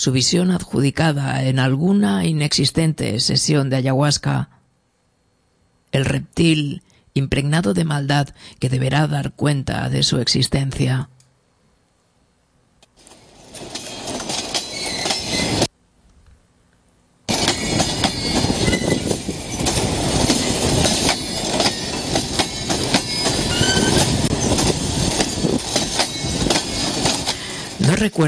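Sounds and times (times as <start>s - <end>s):
speech: 0.0s - 4.6s, 5.9s - 11.2s, 28.0s - 28.2s
train on a long journey rolling over rails: 13.0s - 15.7s, 17.3s - 28.2s
train wheels clickety-clack: 13.0s - 15.7s, 17.3s - 28.0s.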